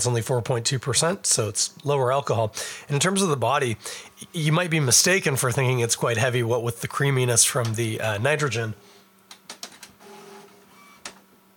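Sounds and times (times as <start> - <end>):
speech: 0.0 - 8.9
printer motor whine during alignment cycle: 10.0 - 11.3.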